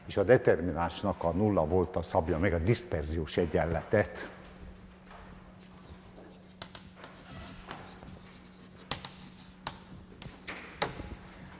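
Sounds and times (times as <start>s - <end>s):
speech: 0.1s - 4.4s
scratching and tapping strokes of writing on a board during a physics lecture: 5.6s - 10.4s.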